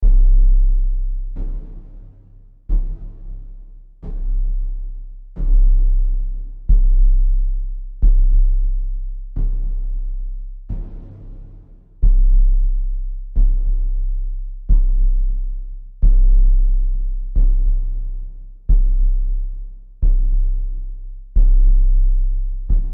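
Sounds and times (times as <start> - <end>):
eerie haunting death march drums with deep tones: 0.0 - 22.9.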